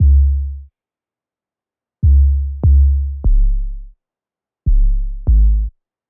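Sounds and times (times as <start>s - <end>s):
sad sub bass in G: 0.0s - 0.7s, 2.0s - 4.0s, 4.7s - 5.7s.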